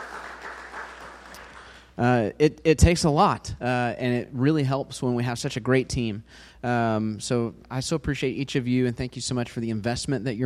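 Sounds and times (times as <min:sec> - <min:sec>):
audience applause for teachers at a school gathering: 0:00.0 - 0:01.9
speech: 0:02.0 - 0:10.4.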